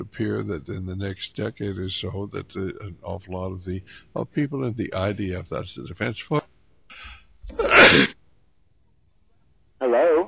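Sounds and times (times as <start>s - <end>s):
speech: 0.1s - 6.5s, 7.5s - 8.2s
breathy intake before a sneeze: 6.9s - 8.1s
sneeze: 7.5s - 8.2s.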